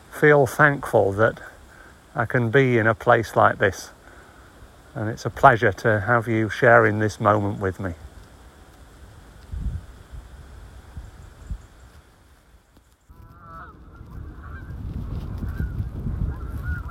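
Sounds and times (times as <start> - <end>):
steady outdoor rustle: 0.0 - 16.9
speech: 0.2 - 1.5, 2.2 - 4.0, 5.0 - 8.0
flock of migrating geese honking overhead: 13.1 - 16.9.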